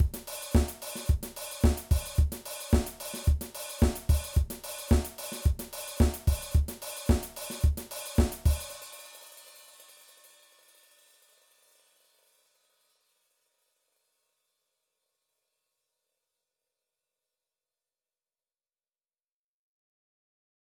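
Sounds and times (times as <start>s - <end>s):
disco drum beat: 0.0s - 8.9s.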